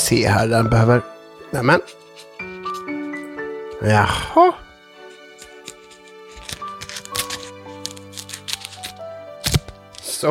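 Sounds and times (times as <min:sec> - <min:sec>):
speech: 0:00.1 - 0:02.0, 0:03.8 - 0:04.6
paper tearing: 0:05.1 - 0:10.3
scissor snips: 0:05.2 - 0:10.1.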